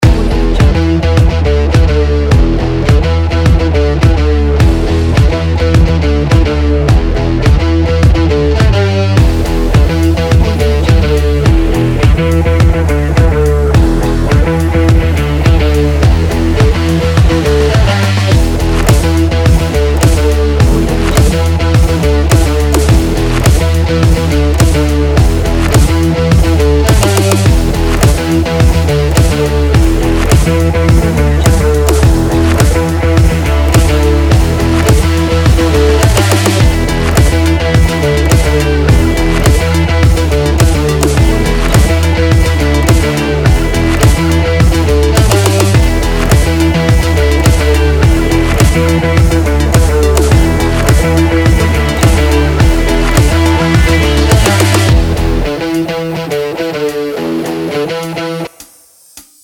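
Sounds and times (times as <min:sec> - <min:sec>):
pulse pounding electronic rock music: 0:00.0 - 0:59.4.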